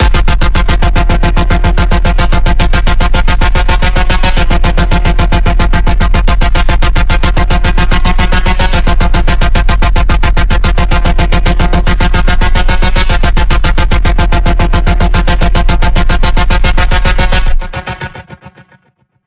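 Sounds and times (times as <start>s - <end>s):
pulse tone in F: 0.0s - 18.4s.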